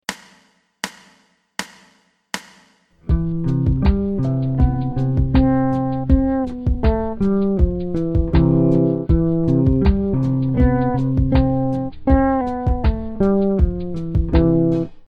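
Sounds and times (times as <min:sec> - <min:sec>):
fretless bass: 0:03.0 - 0:15.0.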